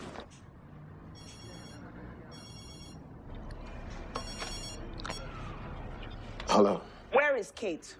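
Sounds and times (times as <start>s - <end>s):
telephone ringing in short electronic bursts: 1.2s - 3.0s, 4.2s - 5.2s
speech: 7.4s - 7.9s.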